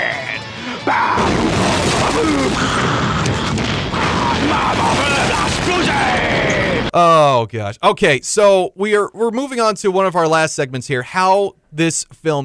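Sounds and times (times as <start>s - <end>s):
sustained roaring rumble: 0.0s - 6.9s
loud explosion: 0.3s - 7.0s
speech: 0.9s - 1.2s, 2.2s - 3.0s, 6.9s - 12.4s
crackling debris-like clatter: 1.2s - 6.9s.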